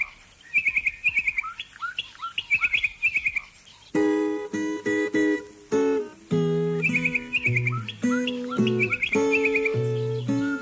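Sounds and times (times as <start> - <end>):
bokmakierie calls: 0.0 - 3.5, 6.7 - 10.5
loud organ-like musical chords: 4.0 - 10.5.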